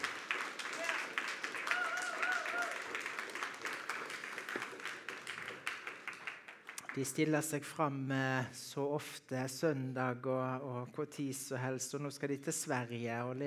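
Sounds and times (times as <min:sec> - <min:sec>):
audience applause: 0:00.0 - 0:07.1
speech: 0:07.0 - 0:13.4.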